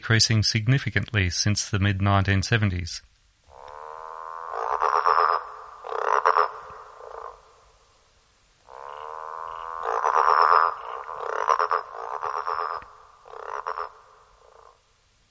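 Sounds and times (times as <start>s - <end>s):
speech: 0.0s - 3.1s
growling grass frog Litoria raniformis calling: 3.5s - 8.0s, 8.6s - 15.0s.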